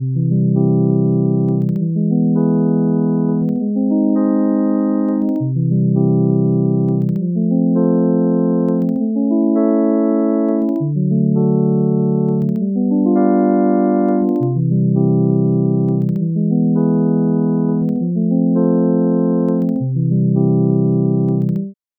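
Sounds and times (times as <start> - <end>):
twelve-tone equal temperament chord progression: 0.0 - 21.6.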